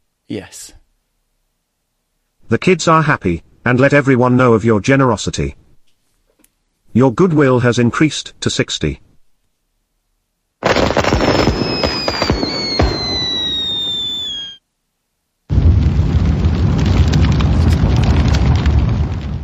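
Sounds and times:
speech: 0:00.3 - 0:00.8, 0:02.5 - 0:05.6, 0:06.9 - 0:09.1
holiday fireworks bursting and crackling: 0:10.6 - 0:14.6, 0:15.5 - 0:19.4
whistling holiday firework rockets: 0:10.7 - 0:14.6.

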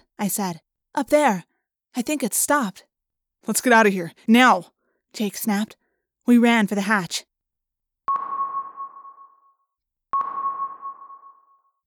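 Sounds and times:
speech: 0:00.2 - 0:07.3
submarine sonar pings with tail: 0:08.1 - 0:11.8.

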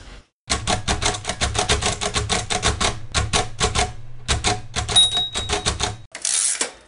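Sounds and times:
braille typewriter typing: 0:00.5 - 0:06.6
bell-like ding of a braille typewriter: 0:05.0 - 0:05.7.

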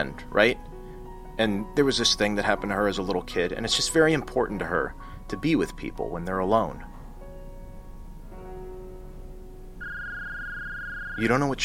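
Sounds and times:
speech: 0:00.0 - 0:00.7, 0:01.4 - 0:06.9, 0:11.2 - 0:11.6
phone ringing with electronic tones: 0:09.8 - 0:11.6.

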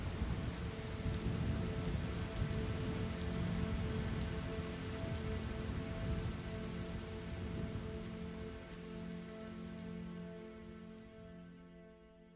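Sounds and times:
dense freezing rain pattering on hard surfaces: 0:00.0 - 0:11.6.

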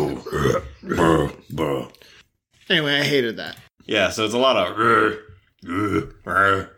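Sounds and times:
human voice imitating guttural burps: 0:00.0 - 0:02.0, 0:05.6 - 0:06.7
speech: 0:00.2 - 0:01.6, 0:02.7 - 0:06.7.

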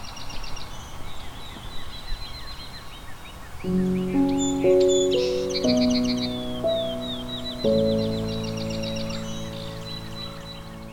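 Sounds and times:
chorus of several birds singing on a sunny spring morning: 0:00.0 - 0:10.9
soft sustained musical tones: 0:03.7 - 0:10.9.

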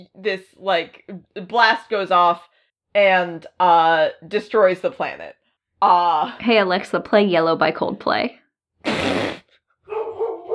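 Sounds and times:
speech: 0:00.0 - 0:09.3
dog giving a loud sharp bark: 0:09.9 - 0:10.5.

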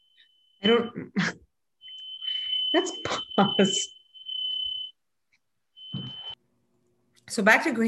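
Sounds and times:
smoke or fire alarm beeping: 0:00.0 - 0:00.9, 0:01.8 - 0:05.0, 0:05.7 - 0:06.4
speech: 0:00.6 - 0:01.4, 0:02.8 - 0:04.0, 0:07.3 - 0:07.8.

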